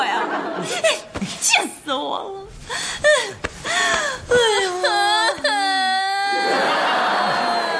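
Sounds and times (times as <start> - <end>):
laughter: 0.1 - 1.1, 6.3 - 7.7
gasping breaths: 2.6 - 4.7
woman crying: 2.7 - 7.7.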